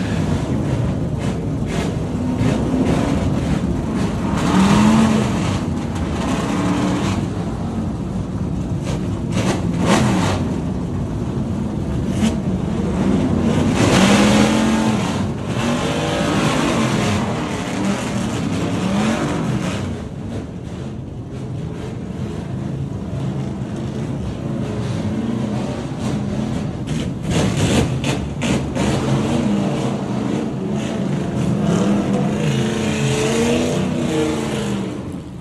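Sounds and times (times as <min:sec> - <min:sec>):
vintage race car engines revving: 0:00.0 - 0:07.8, 0:11.8 - 0:20.0, 0:21.8 - 0:35.3
field of vintage race car engines starting and roaring in the pit lane: 0:00.0 - 0:35.4.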